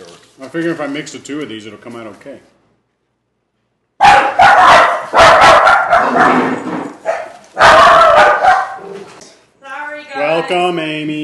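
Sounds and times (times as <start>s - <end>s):
speech: 0.4s - 2.5s, 10.5s - 11.2s
dogs barking: 4.0s - 9.2s.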